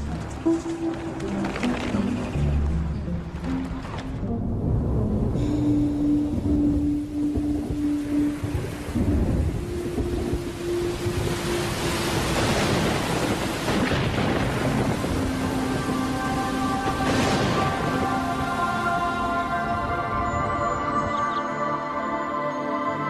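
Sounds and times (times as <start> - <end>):
soft sustained music tones: 0.0 - 23.0
thunder rumbling: 4.3 - 20.6
heavy autumn rain hissing over grassland: 4.7 - 20.5.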